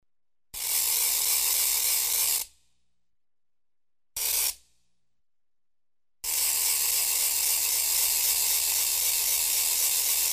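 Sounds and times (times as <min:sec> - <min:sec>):
ratchet rattle spinning: 0:00.6 - 0:02.4, 0:06.3 - 0:10.3.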